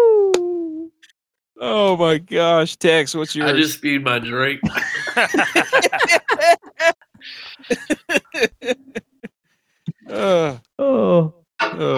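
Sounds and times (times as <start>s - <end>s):
speech: 1.6s - 9.0s, 10.1s - 11.9s
stifled laughing: 4.6s - 9.3s
strained snuffly breaths forced through the nose with a whistling sound: 7.2s - 7.7s
groaning vocal sounds: 9.9s - 11.9s.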